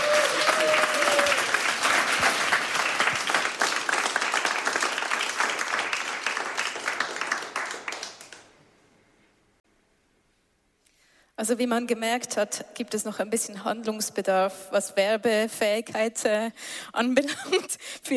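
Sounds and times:
studio audience applause: 0.0 - 8.6
speech: 11.4 - 18.1.

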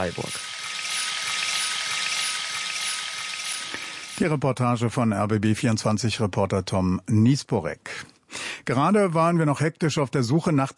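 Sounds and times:
speech: 0.0 - 0.5, 4.2 - 8.1, 8.7 - 10.7
water pouring and spraying from a camping shower: 0.0 - 4.2.

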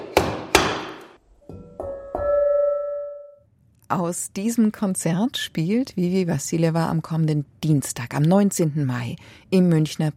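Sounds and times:
hammer striking metal to tune its pitch: 0.2 - 3.1
clear sustained ringing tone of struck metal: 1.4 - 3.5
speech: 3.9 - 10.1.

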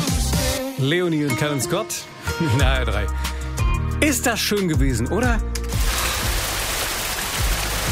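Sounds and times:
speech: 0.8 - 3.3, 4.0 - 5.6
steady rain falling on roofs, streets, meadows and forests in Hessen: 5.8 - 7.9.

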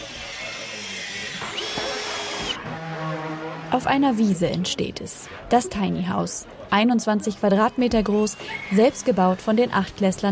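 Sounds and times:
power tool whirring at a tiny house construction site: 0.0 - 3.8
speech: 3.7 - 10.3.

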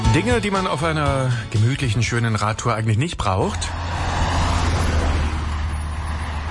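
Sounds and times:
speech: 0.1 - 4.1
trucks and cars roaring past with heavy engine rumble: 3.4 - 6.4.

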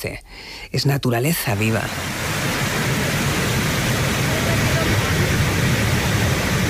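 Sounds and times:
speech: 0.0 - 2.6
waterfall roaring: 1.6 - 6.6.

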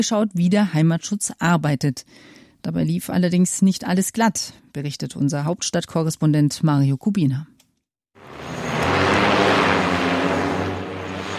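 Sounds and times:
speech: 0.0 - 7.5
interceptor drone motors spinning up and lifting off at an army site: 8.2 - 11.3.

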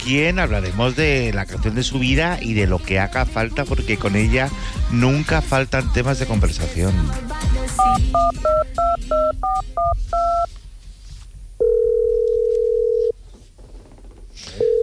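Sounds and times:
speech: 0.0 - 10.6
telephone keypad tones dialing a call: 11.6 - 13.1
long steady telephone tone: 11.6 - 13.2, 14.6 - 14.8.

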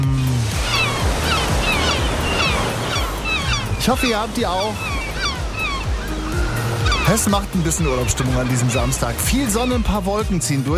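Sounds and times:
ocean surf washing onto a shore: 0.0 - 10.7
faint bird calls: 0.5 - 10.0
speech: 3.9 - 4.9, 7.1 - 10.7.

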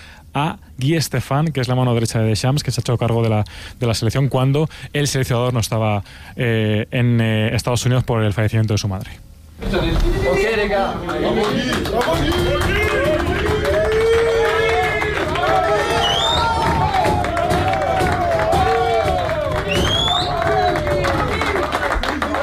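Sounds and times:
speech: 0.4 - 12.8
football players cheering, clapping and shouting in a crowded locker room: 10.9 - 22.4
whoops from football players in a locker room: 12.9 - 21.4.

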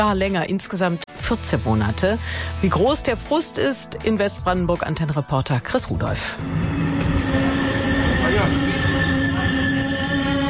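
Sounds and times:
speech: 0.0 - 7.5
RE4 regional train rolling into Rathenow station in Brandenburg Germany: 6.2 - 10.4
train wheel or brake squeal: 6.4 - 10.4.

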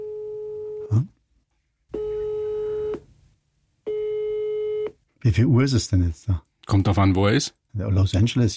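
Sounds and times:
unanswered telephone ringback tone: 0.0 - 0.8, 2.0 - 3.0, 3.9 - 4.9
speech: 0.9 - 1.2, 5.2 - 8.5.

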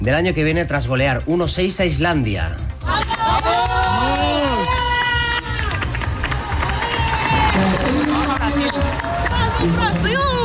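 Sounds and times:
speech: 0.0 - 3.4, 9.6 - 10.4
women footballers cheering and shouting in victory celebration: 2.9 - 10.4.

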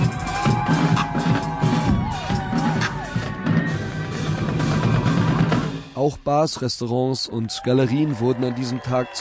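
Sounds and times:
crowd cheering and whooping: 0.0 - 5.5, 7.4 - 9.1
marching drums pounding with sticks and mallets: 0.0 - 5.8
speech: 6.0 - 9.1.

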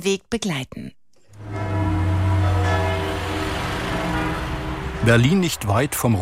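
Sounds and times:
speech: 0.0 - 1.0, 5.0 - 6.2
city car traffic rushing with deep engine rumble: 1.3 - 6.2
faint church bells ringing: 1.4 - 6.2.

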